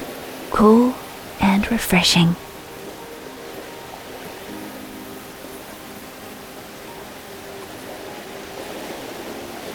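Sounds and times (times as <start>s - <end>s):
speech: 0.5s - 1.0s, 1.7s - 2.5s
roar of falling water from Bowen Falls in Milford Sound: 0.6s - 2.4s.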